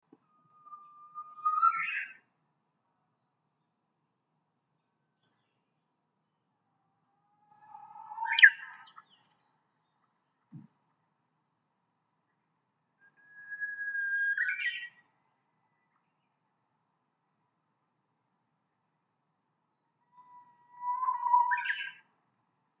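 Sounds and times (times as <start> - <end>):
Japanese cettia call: 7.6 - 9.3, 13.0 - 15.0, 20.1 - 22.0.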